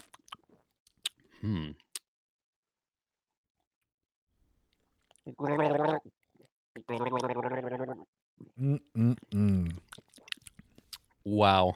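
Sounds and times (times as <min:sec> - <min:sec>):
speech: 0:01.4 - 0:01.8, 0:05.4 - 0:05.9, 0:11.4 - 0:11.7
person gargling a sip of beer: 0:01.4 - 0:01.9, 0:06.8 - 0:09.8.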